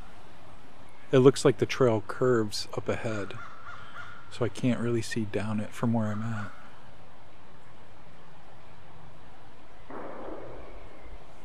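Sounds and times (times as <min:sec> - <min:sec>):
quiet outdoor ambience on a trail: 0:00.0 - 0:11.4
speech: 0:01.1 - 0:03.5, 0:04.3 - 0:06.6
thrown rock striking something on a trail: 0:09.9 - 0:11.4.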